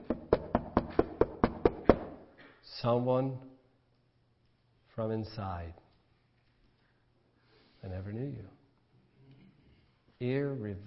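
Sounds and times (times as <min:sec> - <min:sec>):
knocking on a wooden door: 0:00.0 - 0:02.1
speech: 0:02.8 - 0:03.5, 0:05.0 - 0:05.8, 0:07.8 - 0:08.6, 0:10.2 - 0:10.8.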